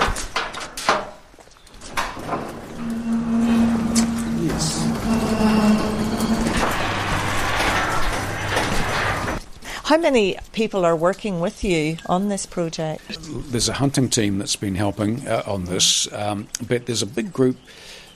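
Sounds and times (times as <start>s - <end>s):
roller door rattling and rumbling open: 1.9s - 9.4s
low hum: 2.5s - 9.4s
speech: 9.9s - 18.0s.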